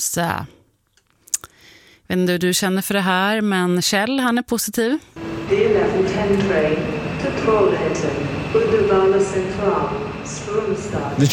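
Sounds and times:
speech: 0:00.0 - 0:00.6, 0:02.1 - 0:11.3
indistinct voices and murmuring crowd at Gothenburg Central Station: 0:05.2 - 0:11.3
steady mechanical rumble at Gothenburg Central Station, Sweden: 0:05.2 - 0:11.3.

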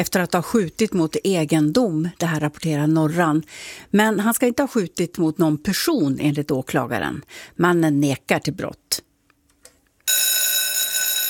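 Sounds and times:
speech: 0:00.0 - 0:09.1
loud electric school bell ringing to start the autumn term: 0:10.1 - 0:11.2.

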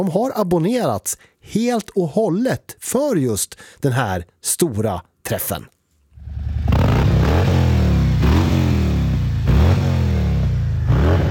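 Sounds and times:
speech: 0:00.0 - 0:05.8
Harley-Davidson motorcycle engines revving: 0:06.2 - 0:11.3.

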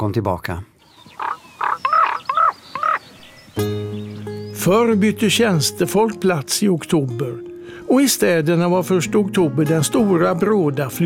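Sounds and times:
speech: 0:00.0 - 0:01.3, 0:04.6 - 0:11.0
raven croaking: 0:00.8 - 0:03.4.

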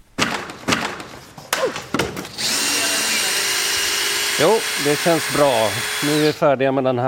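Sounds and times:
clattering thuds of tools knocking apart an election pavilion: 0:00.2 - 0:02.4
power drill whirring continuously: 0:02.3 - 0:06.4
speech: 0:04.4 - 0:07.0.

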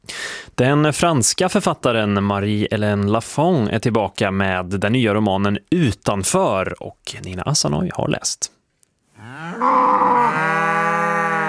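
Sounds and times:
speech: 0:00.6 - 0:08.6
cow mooing: 0:09.2 - 0:11.4.

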